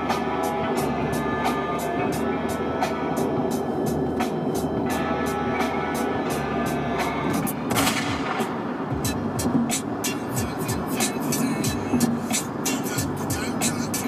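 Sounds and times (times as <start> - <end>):
dense rumbling song backdrop: 0.0 - 14.0
loud sharp gunshot bang at the opening of a song: 7.7 - 8.5.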